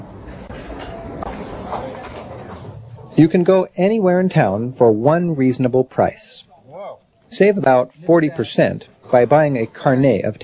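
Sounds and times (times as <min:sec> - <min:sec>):
Paris metro subway train rumbling: 0:00.0 - 0:03.2
speech: 0:03.2 - 0:06.5, 0:07.3 - 0:10.4.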